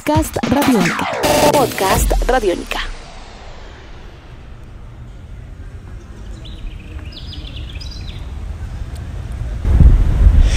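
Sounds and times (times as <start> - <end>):
speech: 0.0 - 2.9
steady low rumble: 0.0 - 8.8
heavy wind buffeting the microphone on a city street: 5.6 - 10.5.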